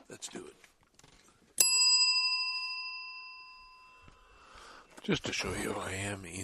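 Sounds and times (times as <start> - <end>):
speech: 0.1 - 0.7, 5.0 - 6.4
bright metallic bell ringing: 1.6 - 4.3.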